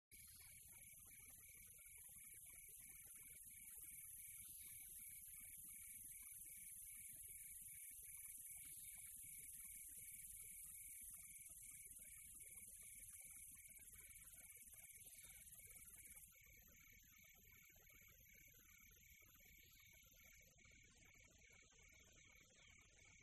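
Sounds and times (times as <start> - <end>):
quiet tropical nature ambience: 0.1 - 23.2.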